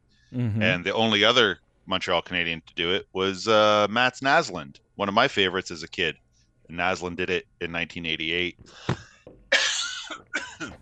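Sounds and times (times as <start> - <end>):
speech: 0.3 - 9.1
person coughing from a tickle in the throat: 8.8 - 10.7.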